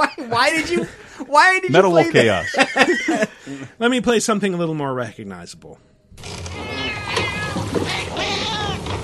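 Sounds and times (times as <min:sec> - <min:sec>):
laughter: 0:00.0 - 0:01.1, 0:01.8 - 0:03.7
speech: 0:00.0 - 0:06.4
cat meowing in speech-like yowls: 0:06.5 - 0:09.0.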